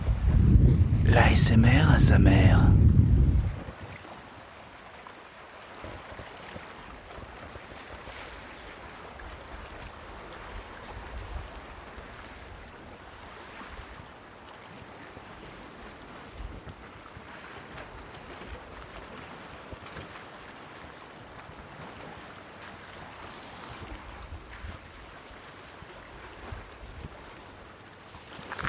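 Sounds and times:
wind buffeting the microphone's furry windscreen: 0:00.0 - 0:04.0
water and waves on the island of Noirmoutier shoreline: 0:00.0 - 0:28.6
wind on the Noirmoutier shoreline: 0:00.0 - 0:28.6
speech: 0:01.1 - 0:02.8.

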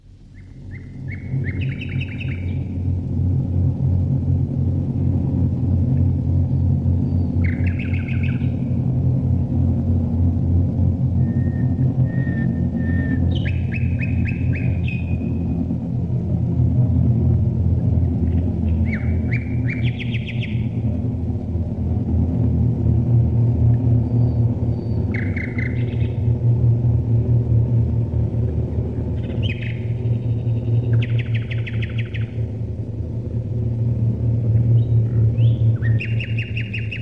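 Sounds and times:
heavy bomber aircraft engines droning overhead: 0:00.0 - 0:37.0
birds chirping and trilling: 0:00.3 - 0:03.0, 0:06.3 - 0:09.0, 0:11.2 - 0:15.8, 0:18.0 - 0:21.2, 0:23.8 - 0:26.7, 0:28.6 - 0:37.0.

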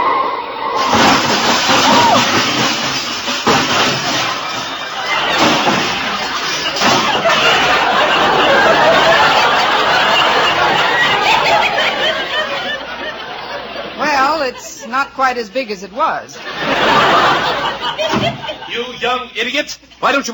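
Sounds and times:
big black touring car being hit in a crash: 0:00.8 - 0:12.8, 0:16.8 - 0:18.7
fenders clattering into the gutter: 0:00.8 - 0:12.8
laughter: 0:00.8 - 0:15.2, 0:16.4 - 0:20.0
speech: 0:15.3 - 0:20.3.

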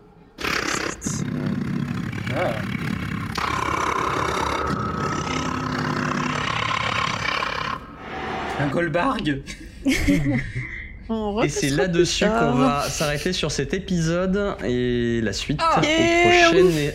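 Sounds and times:
creature roaring: 0:00.4 - 0:08.8
speech: 0:02.3 - 0:02.9, 0:08.6 - 0:16.9
laughter: 0:09.5 - 0:13.1.

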